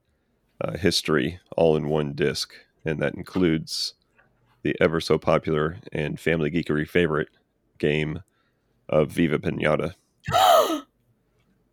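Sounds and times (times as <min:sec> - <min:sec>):
speech: 0:00.6 - 0:04.0, 0:04.6 - 0:08.3, 0:08.9 - 0:10.9
woman giving a loud excited gasp: 0:10.3 - 0:10.8.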